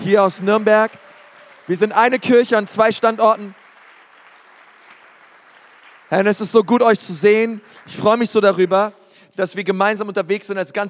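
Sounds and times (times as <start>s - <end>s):
speech: 0.0s - 1.0s, 1.7s - 3.6s, 6.1s - 10.8s
crowd shouting and cheering: 0.0s - 2.6s
crowd clapping: 0.0s - 8.9s.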